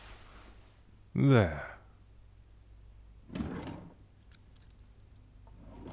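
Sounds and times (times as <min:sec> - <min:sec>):
speech: 0:01.2 - 0:01.7
metal handcuffs clinking and rattling: 0:04.2 - 0:05.2
handcuffs clicking shut on a person lying on a bed: 0:04.3 - 0:05.1.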